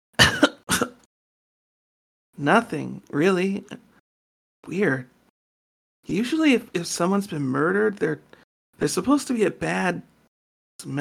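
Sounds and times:
forceful coughs: 0.2 - 1.1
speech: 2.4 - 3.9, 4.6 - 5.1, 6.0 - 10.1, 10.8 - 11.0.

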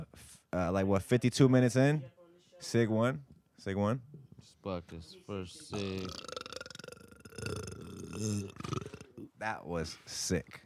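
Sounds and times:
speech: 0.2 - 6.4, 7.4 - 8.8, 9.4 - 10.6
long guttural burp: 5.8 - 9.3.

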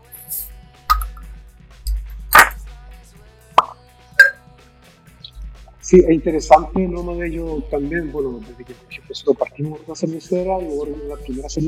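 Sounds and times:
bottle clinks and knocks: 0.0 - 1.2, 1.9 - 2.6, 3.6 - 4.4
speech: 5.9 - 11.6.

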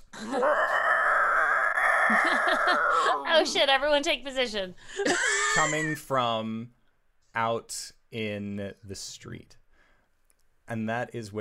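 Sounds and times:
person imitating a very deep growl: 0.1 - 3.3
speech: 0.2 - 0.7, 2.1 - 6.8, 7.4 - 9.6, 10.7 - 11.4.

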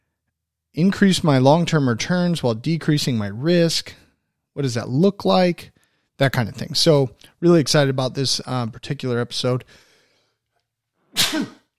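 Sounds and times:
speech: 0.8 - 4.0, 4.6 - 9.8, 11.2 - 11.6
person sneezing: 11.1 - 11.7.

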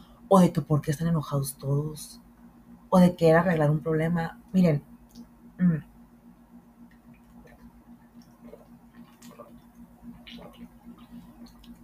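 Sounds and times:
steady low hum: 0.0 - 11.8
speech: 0.3 - 2.3, 2.9 - 4.9, 5.6 - 5.9
person sipping water: 7.0 - 11.8
swallowing: 7.2 - 11.8.

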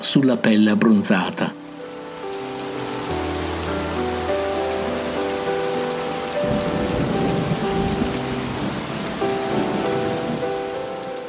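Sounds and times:
soft sustained musical tones: 0.0 - 11.2
speech: 0.1 - 1.6
heavy rain from a thunderstorm on a city street: 1.5 - 11.2
low thunder-like rumble: 6.4 - 10.5.

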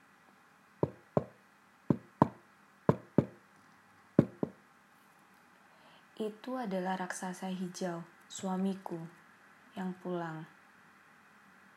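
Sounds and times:
knocking on a door in quick double raps: 0.8 - 3.4, 4.2 - 4.6
speech: 6.2 - 9.2, 9.8 - 10.6.

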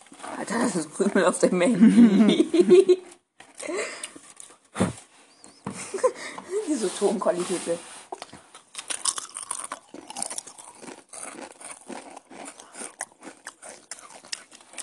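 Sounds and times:
speech: 0.5 - 4.0, 6.7 - 8.0
laughter: 1.8 - 3.0
loud crunchy chewing with wet smacking: 8.1 - 14.8.

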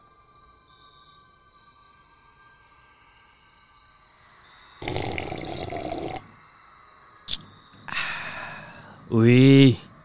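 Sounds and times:
slurping hot black coffee from a cup: 4.8 - 6.3
speech: 9.1 - 9.9.

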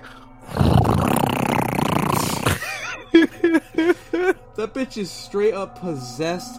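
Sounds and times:
voice imitating a loud roaring computer fan: 0.5 - 2.6
laughter: 2.5 - 4.4
speech: 4.6 - 6.5.

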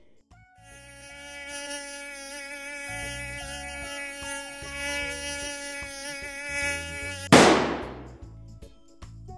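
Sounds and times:
mosquito buzzing in bedroom at night: 0.6 - 8.0
sudden sharp burst of noise: 7.2 - 8.2.

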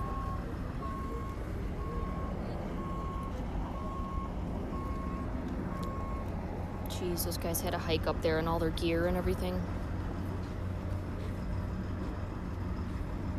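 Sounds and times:
ambulance reversing alarm beeping: 0.0 - 6.3
low engine rumble: 0.0 - 13.3
outdoor noise: 0.0 - 13.3
speech: 7.0 - 9.8.

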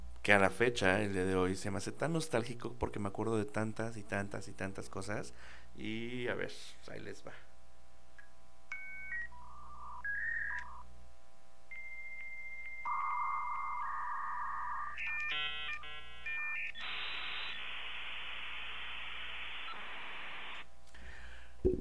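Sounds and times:
speech: 0.2 - 7.5
dial-up modem connecting to the internet: 8.7 - 10.9, 11.7 - 20.7.

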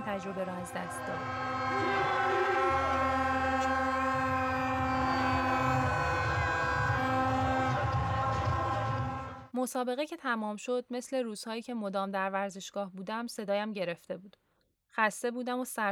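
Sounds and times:
rumbling stadium crowd noise: 0.0 - 9.5
stadium horns droning together at a steady pitch: 0.0 - 9.5
speech: 0.1 - 2.5, 9.6 - 14.4, 15.0 - 15.9.

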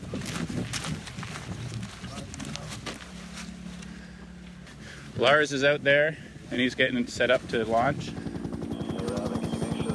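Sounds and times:
speech: 5.2 - 8.2
helicopter rotor chopping: 5.2 - 9.9
helicopter engine whine: 6.2 - 9.9.

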